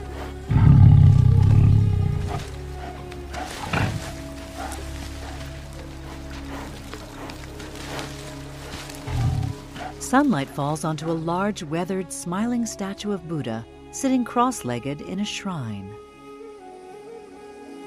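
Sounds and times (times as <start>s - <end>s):
tiger roaring in a forest: 0.0s - 10.1s
speech: 10.1s - 16.0s.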